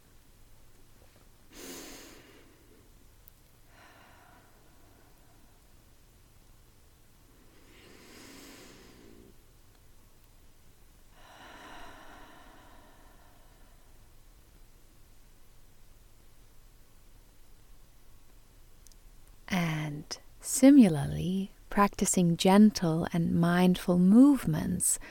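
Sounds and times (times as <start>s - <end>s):
slow deep belly breathing for relaxation: 1.5s - 3.0s, 3.6s - 5.8s, 7.3s - 9.5s, 11.1s - 14.2s
speech: 20.6s - 25.0s.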